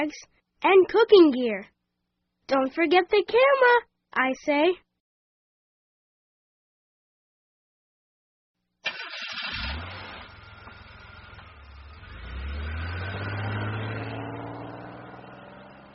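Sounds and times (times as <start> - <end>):
speech: 0.0 - 1.7, 2.5 - 4.8
car engine starting: 8.8 - 15.9.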